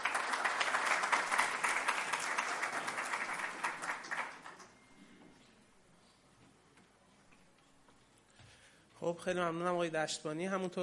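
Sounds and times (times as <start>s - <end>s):
audience applause: 0.0s - 4.8s
speech: 9.0s - 10.8s.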